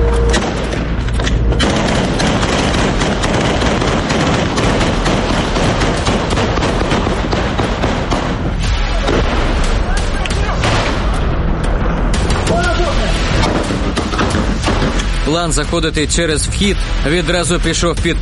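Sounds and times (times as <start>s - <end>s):
heavy booming explosions in a battle: 0.2s - 16.2s
sustained dense gunfire in a battle: 0.3s - 11.3s, 12.1s - 15.2s
people shouting in a battle: 8.8s - 10.8s, 12.3s - 13.1s
speech: 15.4s - 18.1s.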